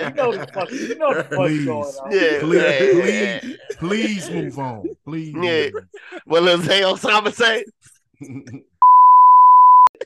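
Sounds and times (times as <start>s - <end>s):
speech: 0.0s - 8.7s
laughter: 0.0s - 8.8s
censor bleep over a swear word: 8.8s - 9.9s.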